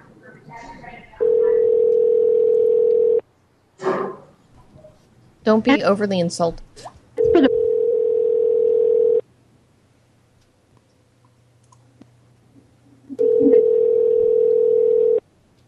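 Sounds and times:
telephone ringback tone on an outgoing call: 1.2s - 3.2s, 7.2s - 9.2s, 13.2s - 15.2s
speech: 5.5s - 7.5s.

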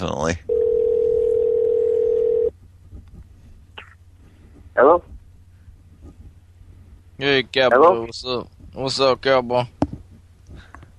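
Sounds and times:
telephone dial tone while calling someone back: 0.5s - 2.5s
speech: 7.6s - 9.8s.

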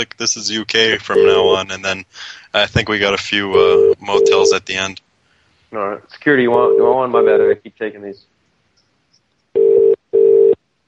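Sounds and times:
speech: 0.0s - 5.0s, 5.7s - 8.3s
UK telephone ringing tone: 3.7s - 4.5s, 9.6s - 10.6s.

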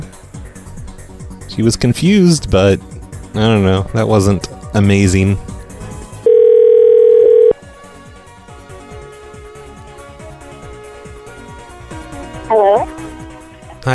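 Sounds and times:
speech: 1.6s - 5.5s
telephone dial tone: 6.3s - 7.6s.

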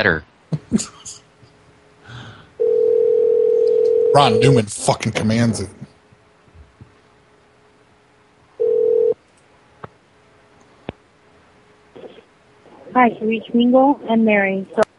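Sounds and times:
speech: 0.0s - 1.2s, 4.1s - 5.9s, 13.0s - 14.9s
emergency telephone line ringing unanswered: 2.6s - 4.6s, 8.6s - 9.2s
person speaking loudly: 4.2s - 5.8s.

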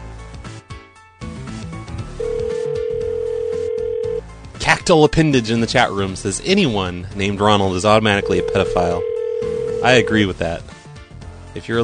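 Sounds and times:
music: 0.0s - 11.8s
phone line ringing tone on an outgoing call: 2.2s - 4.2s, 8.1s - 10.2s
speech: 4.7s - 9.1s, 9.8s - 10.7s, 11.6s - 11.8s.

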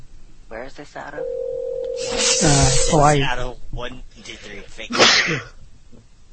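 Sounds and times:
speech: 0.8s - 5.6s
sneeze: 4.9s - 5.6s.

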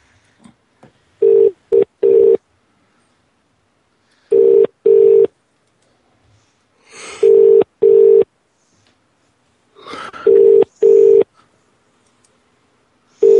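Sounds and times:
unanswered phone line ringback tone in double bursts: 1.2s - 2.4s, 4.3s - 5.3s, 7.2s - 8.3s, 10.3s - 11.3s, 13.2s - 13.3s.

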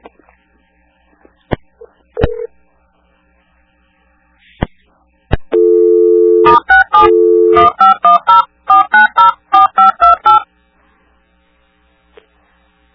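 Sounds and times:
touch-tone keypad beeps pressed on a telephone: 5.6s - 10.4s.

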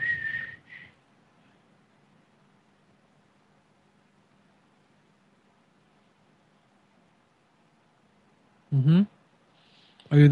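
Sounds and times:
person whistling to imitate a switch-operated device's whistle: 0.0s - 1.0s
speech: 8.8s - 9.2s, 10.1s - 10.3s.

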